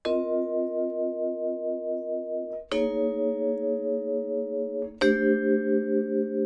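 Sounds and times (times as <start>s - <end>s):
vibraphone in D: 0.0s - 6.3s.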